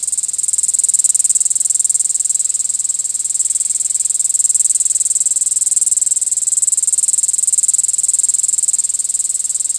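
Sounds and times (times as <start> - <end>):
cicada call in Michigan: 0.0 - 9.7.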